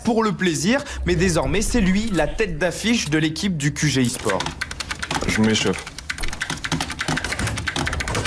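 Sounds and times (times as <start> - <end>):
speech: 0.1 - 4.7, 5.3 - 5.9
fast typing on a computer keyboard: 3.7 - 8.2.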